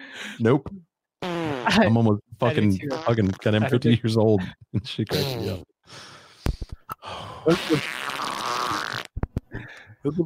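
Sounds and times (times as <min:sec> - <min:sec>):
speech: 0:00.3 - 0:00.9, 0:01.6 - 0:06.2, 0:07.1 - 0:08.2, 0:09.5 - 0:10.2
sputtering fart noise: 0:01.2 - 0:01.9, 0:02.9 - 0:03.6, 0:07.5 - 0:09.2.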